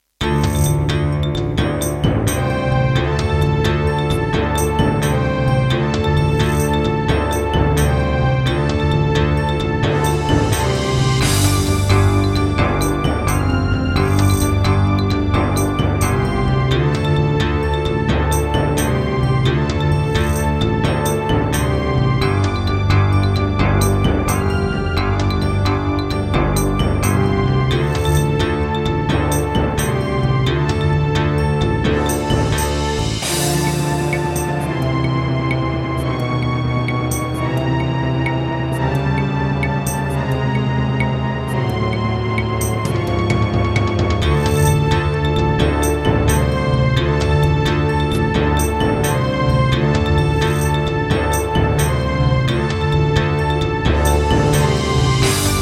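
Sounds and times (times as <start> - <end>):
Roland SC-88 Pro wavetable synthesizer: 0.2 - 55.5.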